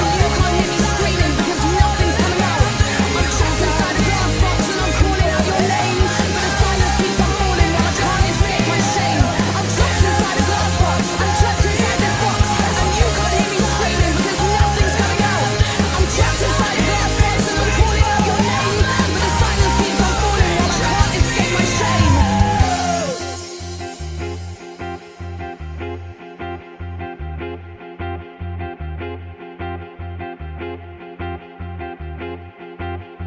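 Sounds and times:
forceful shouted rap-style vocals: 0.0 - 23.5
dense loud rock-style full-band music: 0.0 - 33.2.

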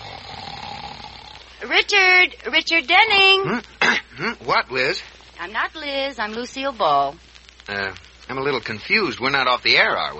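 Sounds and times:
person snoring: 0.0 - 1.6
speech: 1.6 - 10.1.

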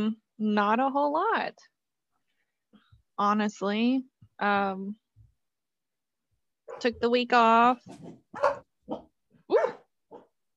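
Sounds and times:
speech: 0.0 - 1.8, 3.2 - 5.0, 6.7 - 9.8
guarding dog barking at an intruder: 7.9 - 10.3.

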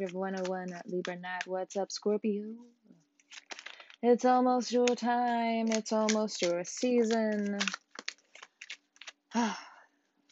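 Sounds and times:
tarot deck being shuffled: 0.0 - 1.5, 3.2 - 4.0, 4.7 - 9.2
speech: 0.0 - 7.8, 9.4 - 9.6.

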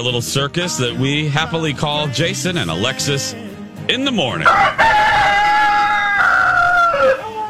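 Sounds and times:
speech: 0.0 - 5.1
sick rooster crowing hoarsely: 4.4 - 7.4.

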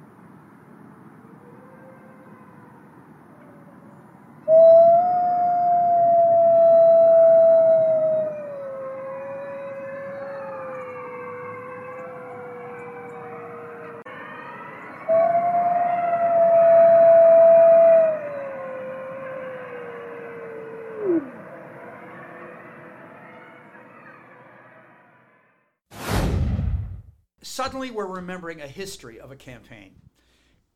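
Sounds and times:
gray wolf howling: 1.4 - 24.4
speech: 27.7 - 30.0.

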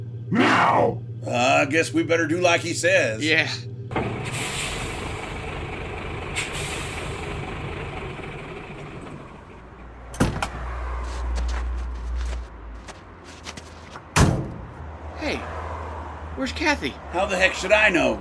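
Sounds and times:
truck idling: 0.0 - 14.9
speech: 0.3 - 4.4, 16.6 - 18.1
truck doors slamming shut: 10.1 - 10.7, 14.0 - 14.8
shuffling and creaking of people climbing out of a truck: 10.4 - 14.1.

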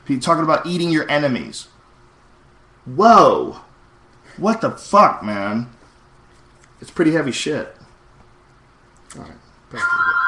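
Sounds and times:
speech: 0.1 - 1.7, 2.8 - 3.7, 4.4 - 5.8, 6.8 - 7.8, 9.1 - 10.2
home telephone ringing with a bright electronic tone: 9.8 - 10.2.

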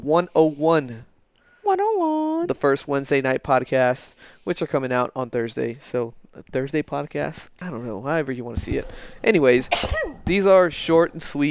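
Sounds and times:
speech: 0.0 - 1.1, 1.7 - 11.4
sneeze: 9.7 - 10.2.

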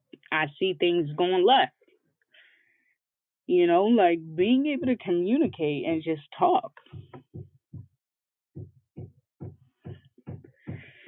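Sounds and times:
speech: 0.4 - 1.8, 3.5 - 7.0
low thuds from someone hanging things up in a room: 4.4 - 5.9, 6.8 - 8.0, 8.6 - 11.0.

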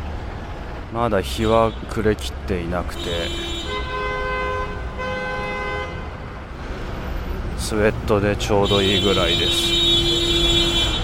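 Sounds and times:
dense rumble of street traffic: 0.0 - 11.0
speech: 0.9 - 3.6, 7.7 - 10.1
car horns honking in long sustained blasts: 2.8 - 6.2, 8.4 - 11.0.

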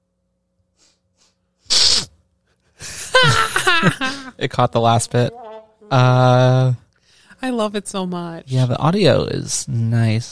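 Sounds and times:
person sniffling into a microphone: 0.8 - 2.2
speech: 3.8 - 6.8, 7.4 - 10.3.

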